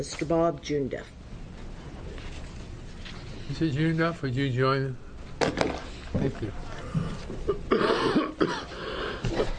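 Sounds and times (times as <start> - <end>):
speech: 0.0 - 1.2, 3.5 - 8.6
person coughing in harsh bursts: 7.5 - 9.5.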